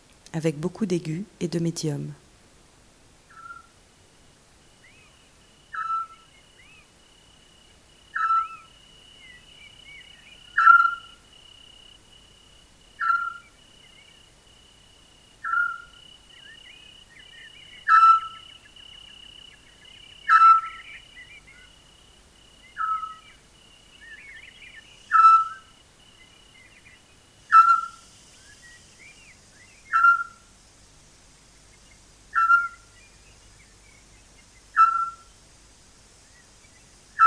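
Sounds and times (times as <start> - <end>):
speech: 0.4 - 2.2
Eurasian scops owl giving whistled hoots: 3.3 - 3.8, 4.8 - 12.0, 13.0 - 14.3, 15.4 - 21.8, 22.6 - 30.8, 31.6 - 35.4
constant thin high insect-like drone: 4.8 - 37.2.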